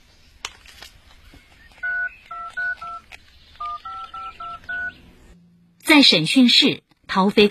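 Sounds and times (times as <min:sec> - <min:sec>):
telephone keypad tones dialing a phone number: 0:01.8 - 0:05.0
speech: 0:05.9 - 0:07.4.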